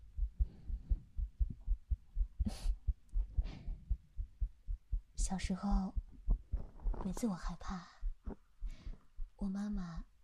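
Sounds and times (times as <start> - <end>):
person's heartbeat: 0.0 - 10.2
speech: 2.5 - 2.8, 5.3 - 6.0, 7.0 - 7.9, 9.4 - 10.1
soft rustling: 6.2 - 9.1.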